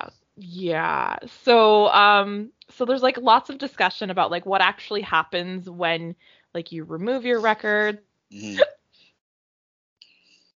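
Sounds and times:
speech: 0.4 - 8.8
person hiccuping into the microphone: 8.4 - 8.8.

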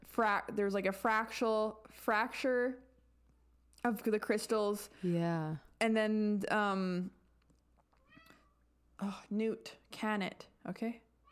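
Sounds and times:
speech: 0.2 - 2.9, 3.8 - 7.2, 9.0 - 11.0
hungry cat meowing: 8.0 - 8.6.

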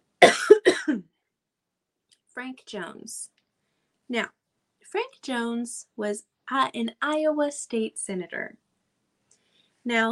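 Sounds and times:
person clearing throat: 0.2 - 1.1
speech: 2.4 - 3.4, 4.1 - 8.6, 9.8 - 10.1.

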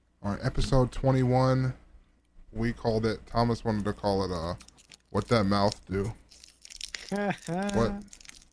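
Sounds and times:
speech: 0.2 - 1.8, 2.5 - 6.2, 7.1 - 8.2
crinkly plastic snack package rustling and tearing open: 4.6 - 8.5.

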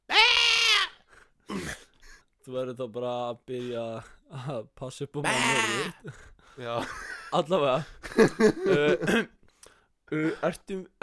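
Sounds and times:
person imitating a goat bleating: 0.1 - 1.8, 5.2 - 6.0
speech: 2.5 - 9.4, 10.1 - 11.0
laughter: 6.7 - 9.3.

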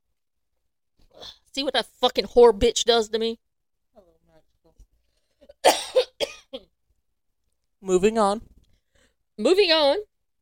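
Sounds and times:
speech: 1.2 - 3.4, 7.8 - 8.5, 9.4 - 10.1
person coughing fit: 5.6 - 6.6.

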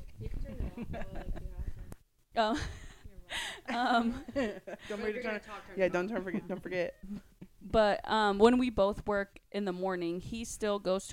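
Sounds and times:
speech: 0.2 - 1.6, 2.3 - 11.1
female's loud heavy raspy breathing: 3.3 - 3.8.

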